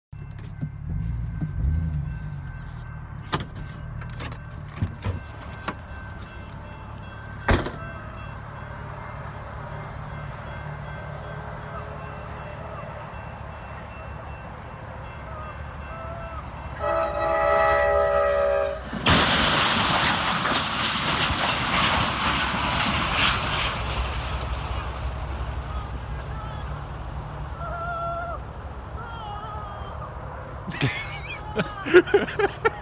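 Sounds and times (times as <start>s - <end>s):
truck rumbling: 0.1s - 12.4s, 18.4s - 32.8s
horn blaring: 16.2s - 18.9s
laughter: 30.6s - 32.8s.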